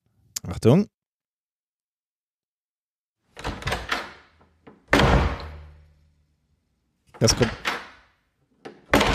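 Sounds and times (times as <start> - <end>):
speech: 0.5 - 0.9, 7.2 - 7.6
door rattling: 3.3 - 5.9, 7.2 - 9.1
door slamming shut: 3.4 - 5.9, 7.2 - 8.1, 8.7 - 9.1.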